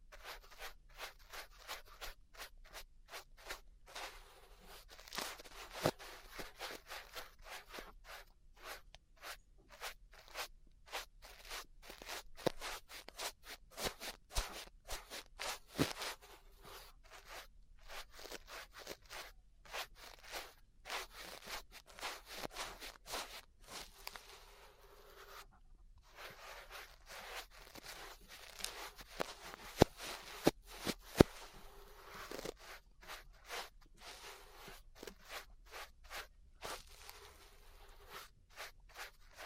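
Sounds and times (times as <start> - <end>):
ear brushing on a binaural microphone: 0.0 - 39.4.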